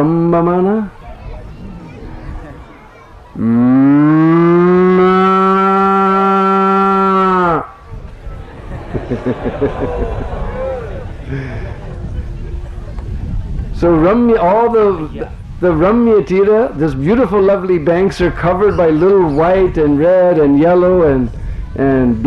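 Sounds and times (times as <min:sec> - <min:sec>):
speech: 0:00.0 - 0:01.0, 0:03.4 - 0:03.7, 0:13.8 - 0:22.2
long loud drawn-out cow moo: 0:03.4 - 0:07.8
laughter: 0:08.2 - 0:13.2.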